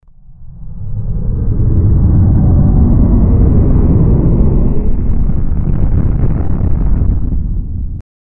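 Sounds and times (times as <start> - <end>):
spaceship entering warp speed with a deep rumbling: 0.0 - 8.0.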